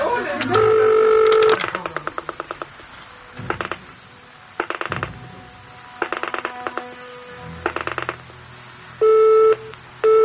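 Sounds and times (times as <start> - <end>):
telephone busy signal: 0.5 - 1.6, 9.0 - 10.2
telephone dialing-like tone pulses: 0.6 - 1.6, 9.0 - 10.2.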